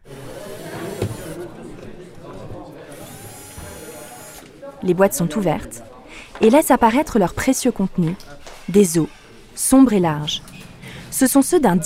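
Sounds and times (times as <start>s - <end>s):
electric screwdrivers whirring among piled-up crates at an auction house: 0.5s - 1.4s, 3.0s - 4.5s
speech: 4.8s - 10.5s, 11.2s - 11.8s.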